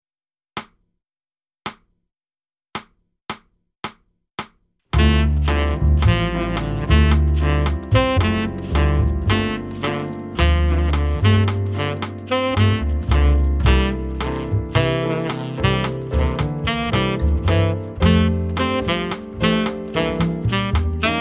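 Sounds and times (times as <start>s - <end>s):
concert backing track: 5.0s - 21.1s.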